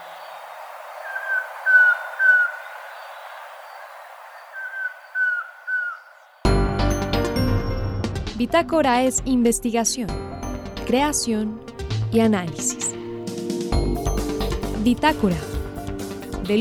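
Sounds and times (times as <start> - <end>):
collared trogon whistled calls in the Valle del Cauca: 0.0 - 6.5
music: 6.5 - 16.5
speech: 8.4 - 10.2, 10.9 - 12.8, 14.8 - 15.5.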